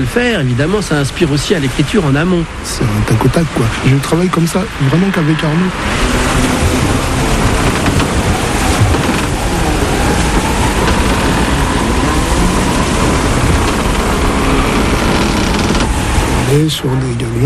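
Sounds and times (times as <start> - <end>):
speech: 0.0 - 7.1, 16.5 - 17.4
hurricane wind rushing at sea: 0.0 - 17.4
waves crashing at sea in a hurricane: 0.0 - 17.4.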